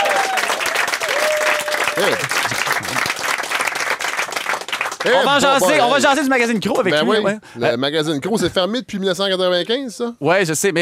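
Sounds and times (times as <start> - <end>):
television talk show studio audience applauding loudly: 0.0 - 6.2
speech: 2.0 - 3.0, 5.0 - 10.8.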